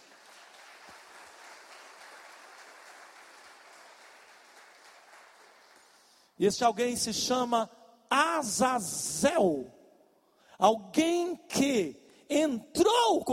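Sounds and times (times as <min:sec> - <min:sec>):
crowd applauding: 0:00.0 - 0:06.3
speech: 0:06.4 - 0:09.8, 0:10.6 - 0:13.3.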